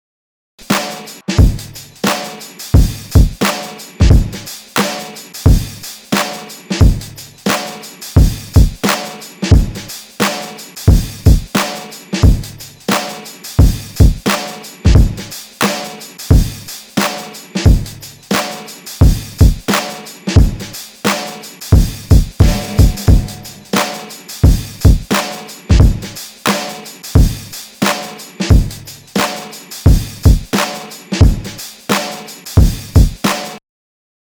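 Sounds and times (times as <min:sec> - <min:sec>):
new drum: 0:00.6 - 0:33.6.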